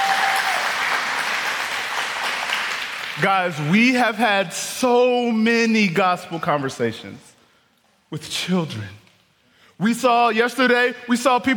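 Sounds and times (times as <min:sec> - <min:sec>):
church audience clapping: 0:00.0 - 0:03.7
speech: 0:03.2 - 0:07.3, 0:08.1 - 0:09.0, 0:09.8 - 0:11.5.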